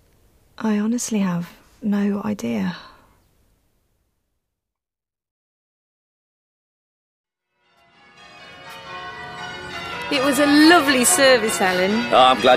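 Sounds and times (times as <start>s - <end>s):
speech: 0.6s - 2.9s, 10.1s - 12.5s
church bells ringing a quarter peal: 7.5s - 12.5s.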